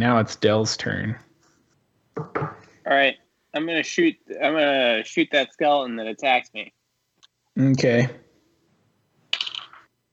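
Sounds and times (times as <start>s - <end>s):
speech: 0.0s - 1.3s, 2.9s - 6.8s, 7.6s - 8.3s
dice tumbling across a hard table: 9.3s - 9.9s.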